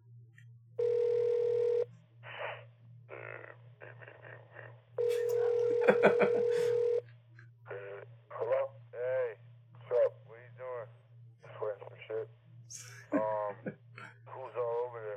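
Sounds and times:
constant low electrical hum: 0:00.0 - 0:15.1
telephone line dial tone: 0:00.8 - 0:01.9, 0:05.0 - 0:07.0
laughter: 0:05.1 - 0:06.8, 0:12.8 - 0:14.2.

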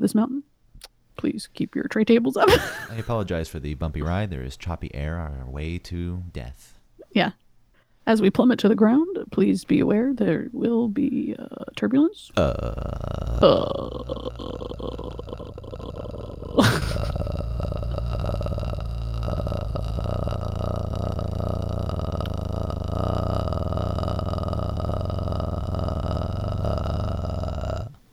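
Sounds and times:
speech: 0:00.0 - 0:07.4, 0:08.0 - 0:15.4
long low croaking burp-like vocal fry: 0:12.4 - 0:28.0.

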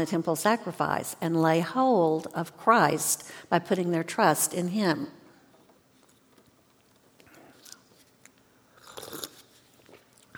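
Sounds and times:
speech: 0:00.0 - 0:05.2
person slurping a drink: 0:08.8 - 0:10.0.

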